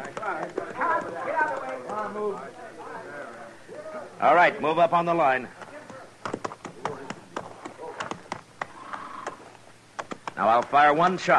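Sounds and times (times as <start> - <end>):
horse hooves clip-clopping as a rider rides off at a race start line: 0.0 - 2.9, 5.3 - 11.3
speech: 4.2 - 5.6, 10.4 - 11.3.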